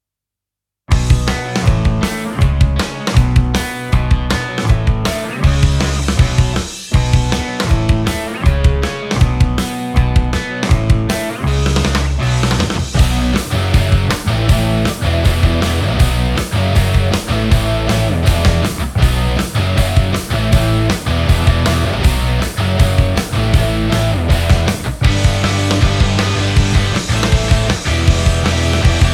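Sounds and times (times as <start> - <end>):
punk music with pickups: 0.9 - 29.1.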